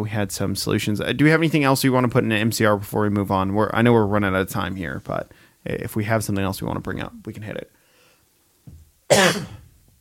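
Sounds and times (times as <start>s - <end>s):
speech: 0.0s - 7.8s, 9.1s - 9.6s
single loud harsh cough: 9.1s - 9.6s.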